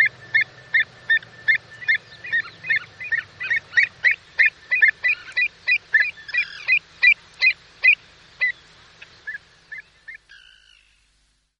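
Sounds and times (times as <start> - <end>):
Pied avocet calls: 0.0 - 11.0.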